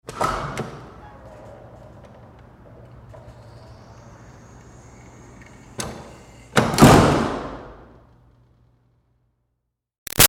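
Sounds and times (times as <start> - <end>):
commercial metal push door opening and closing hard, interior: 0.0 - 2.4, 5.7 - 7.6.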